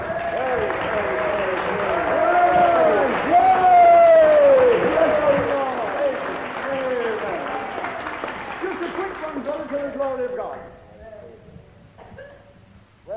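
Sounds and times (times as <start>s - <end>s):
audience cheering and whooping: 0.0s - 8.8s
audience clapping: 0.0s - 10.6s.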